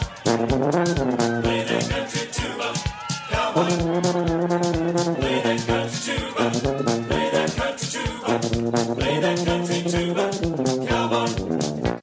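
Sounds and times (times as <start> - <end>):
tuba playing: 0.1 - 2.1, 3.5 - 11.9.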